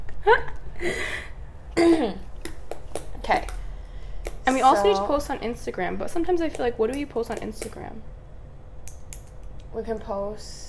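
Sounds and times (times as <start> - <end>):
speech: 0.2 - 2.2, 4.5 - 8.2, 9.7 - 10.6
person coughing: 1.7 - 2.3
throat clearing: 1.8 - 2.3.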